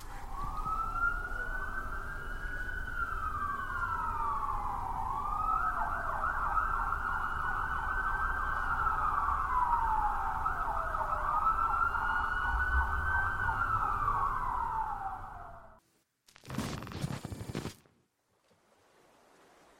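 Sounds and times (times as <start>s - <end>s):
loud police sirens wailing: 0.0s - 15.8s
low traffic rumble: 0.0s - 15.8s.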